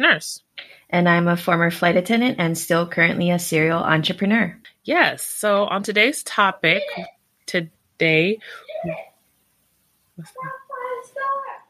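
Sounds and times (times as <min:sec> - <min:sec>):
speech: 0:00.0 - 0:09.1, 0:10.2 - 0:10.6
high-pitched children's voices chattering and calling out: 0:10.2 - 0:11.6.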